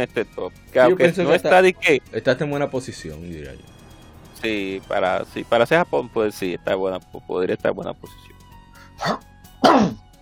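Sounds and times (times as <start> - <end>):
speech: 0.0 - 3.8, 4.4 - 8.3, 9.0 - 9.9
loud sneeze in two bursts: 9.0 - 10.0.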